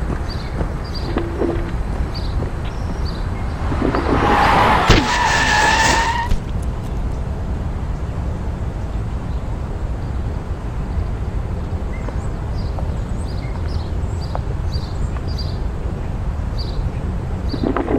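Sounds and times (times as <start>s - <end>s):
steady wind and road noise: 0.0s - 17.9s
car tires screeching in a sustained skid: 3.0s - 6.6s.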